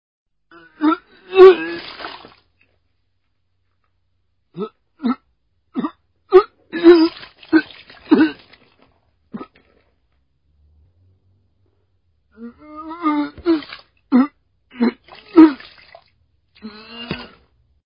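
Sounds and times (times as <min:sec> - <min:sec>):
person vomiting: 0:00.5 - 0:02.4, 0:04.5 - 0:09.7, 0:12.4 - 0:15.9, 0:16.6 - 0:17.5.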